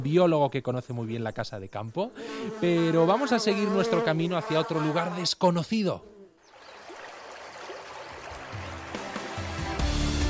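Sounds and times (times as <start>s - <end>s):
speech: 0.0s - 6.1s
water splashing from a public fountain: 6.5s - 9.8s.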